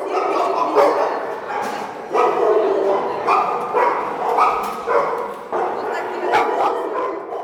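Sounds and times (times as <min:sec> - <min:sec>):
dogs barking and yipping at guide dog training school kennel in Kupavna Russia: 0:00.0 - 0:07.4
dogs whimpering at guide dog kennel: 0:03.8 - 0:07.4.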